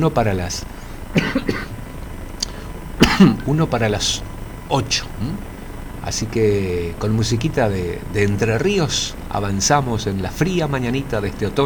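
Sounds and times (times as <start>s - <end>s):
speech: 0.0s - 1.6s, 3.2s - 11.6s
person coughing: 1.1s - 1.8s, 3.0s - 3.5s.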